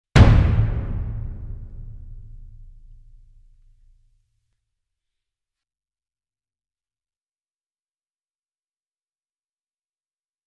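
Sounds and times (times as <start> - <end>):
single slam: 0.2 - 3.8.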